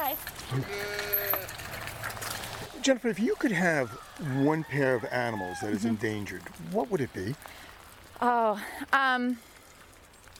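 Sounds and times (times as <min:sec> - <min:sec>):
speech: 0:00.2 - 0:00.9, 0:02.8 - 0:09.5
sheep bleating in a drawn-out wavering cry: 0:00.5 - 0:01.6.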